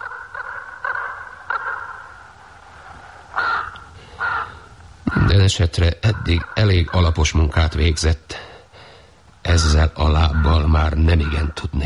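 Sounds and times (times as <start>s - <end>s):
crow cawing: 0.0s - 2.4s, 3.1s - 5.4s, 6.1s - 8.0s, 8.8s - 11.6s
faint hiss: 0.0s - 11.8s
speech: 5.3s - 8.4s, 9.6s - 11.8s.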